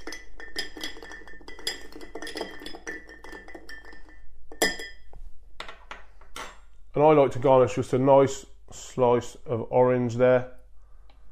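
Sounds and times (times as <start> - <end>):
bar spoon stirring whiskey and amaretto with ice in a mixing glass: 0.0 - 5.0
speech: 7.0 - 10.6.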